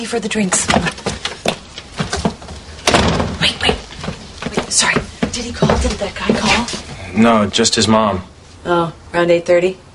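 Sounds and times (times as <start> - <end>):
speech: 0.0 - 1.2, 4.7 - 9.8
door shutting with a thud: 2.8 - 3.8.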